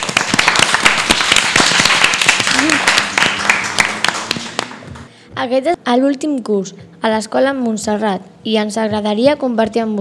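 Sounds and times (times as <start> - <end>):
crowd applauding: 0.0 - 5.1
speech: 5.4 - 9.9.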